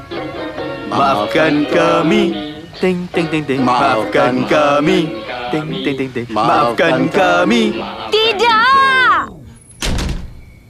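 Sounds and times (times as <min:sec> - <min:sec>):
speech: 0:00.9 - 0:08.4
bedroom door creaking on its hinges: 0:09.7 - 0:10.5
bedroom door shutting with a heavy thud: 0:09.8 - 0:10.5.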